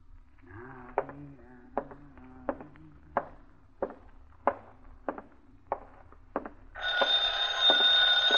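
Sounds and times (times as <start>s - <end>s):
steady taps like footsteps: 0.3s - 8.3s
telephone bell ringing: 6.8s - 8.3s.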